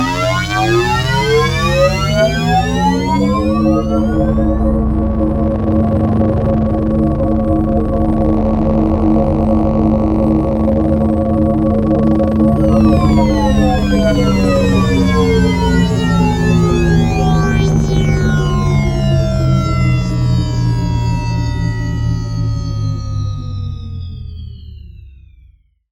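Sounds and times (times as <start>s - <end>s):
science fiction energy sound: 0.1s - 25.1s.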